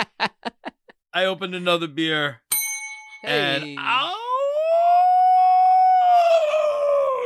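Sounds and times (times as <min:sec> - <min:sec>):
laughter: 0:00.0 - 0:01.0
speech: 0:01.2 - 0:02.4, 0:03.2 - 0:04.2
person imitating a wolf howl: 0:03.6 - 0:07.2.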